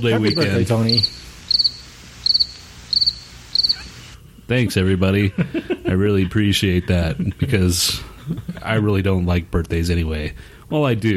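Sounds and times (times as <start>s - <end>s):
speech: 0.0s - 1.6s, 4.5s - 11.1s
cricket chirping: 0.0s - 4.2s
laughter: 4.7s - 8.8s.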